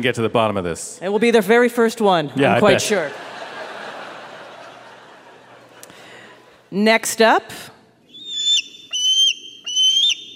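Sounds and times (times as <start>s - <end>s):
speech: 0.0s - 3.4s, 6.7s - 7.8s
laughter: 2.6s - 6.6s
bald eagle calling: 8.1s - 10.3s.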